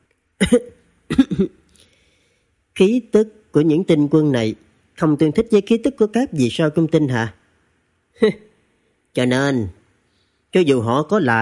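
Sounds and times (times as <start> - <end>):
light husky coughs: 0.4 - 1.7
speech: 0.5 - 1.6, 2.8 - 7.4, 8.2 - 8.5, 9.2 - 9.8, 10.5 - 11.3.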